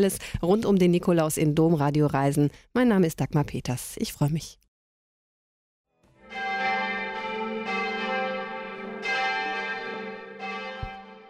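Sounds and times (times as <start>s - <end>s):
speech: 0.0s - 4.6s
parish church bells in Hall in Tirol ringing: 6.1s - 11.2s.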